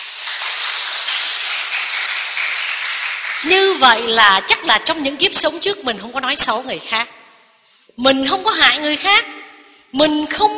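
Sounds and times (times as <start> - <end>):
crowd applauding: 0.0 - 3.8
speech: 3.4 - 7.2, 8.0 - 10.5.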